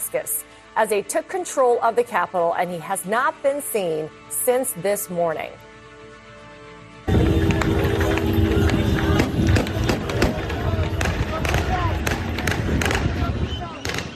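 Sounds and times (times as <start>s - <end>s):
speech: 0.1s - 5.7s
crowd of rebel supporters cheering and shouting in the streets in Syria: 7.1s - 14.1s
celebratory gunshots in the streets in Syria: 7.2s - 14.1s.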